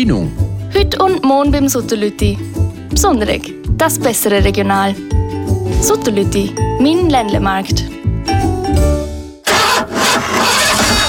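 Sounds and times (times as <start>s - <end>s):
speech: 0.0s - 5.2s, 5.8s - 9.0s
car engine cranking and failing to start: 9.4s - 11.0s
burst of loud rough noise: 9.5s - 11.0s.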